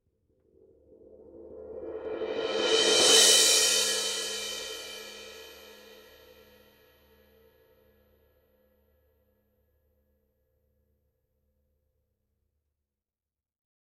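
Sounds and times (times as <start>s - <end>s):
thin 20-inch giant beat cymbal roll: 1.7s - 6.5s.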